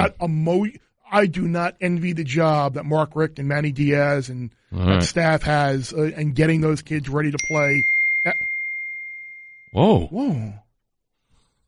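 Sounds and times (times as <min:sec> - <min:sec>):
speech: 0:00.0 - 0:08.4, 0:09.7 - 0:10.6
person's short surprised exclamations: 0:04.8 - 0:05.1
bright chime ding: 0:07.4 - 0:09.9.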